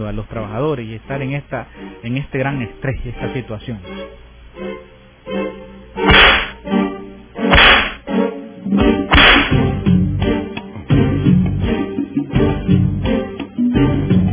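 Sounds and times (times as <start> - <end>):
speech: 0.0 - 4.2
low droning musical background: 0.0 - 14.3
whip lashes: 6.1 - 6.6, 7.5 - 8.0, 9.1 - 9.6.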